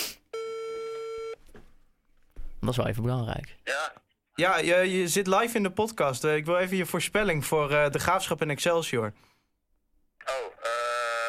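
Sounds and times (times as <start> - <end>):
phone call ringing tone electronic beep: 0.4 - 1.4
speech: 2.6 - 9.3.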